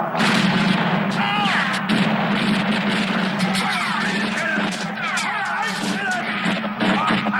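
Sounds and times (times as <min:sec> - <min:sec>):
loud dense gunfire in rapid overlapping bursts from a film scene: 0:00.1 - 0:07.3
people shouting: 0:01.1 - 0:01.9, 0:03.1 - 0:07.3.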